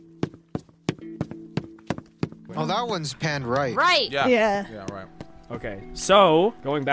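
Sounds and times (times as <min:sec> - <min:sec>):
footsteps on a hard floor: 0:00.1 - 0:02.5
speech: 0:02.6 - 0:06.9.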